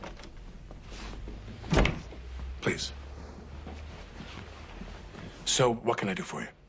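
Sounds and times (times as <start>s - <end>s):
door swinging shut with a muffled thud: 1.6s - 2.2s
speech: 5.5s - 6.6s.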